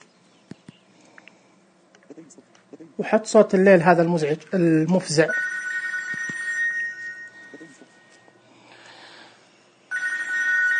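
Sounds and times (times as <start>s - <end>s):
faint noise: 0.0s - 10.7s
speech: 2.2s - 5.6s
mobile phone ringtone: 5.3s - 8.4s, 9.9s - 10.7s.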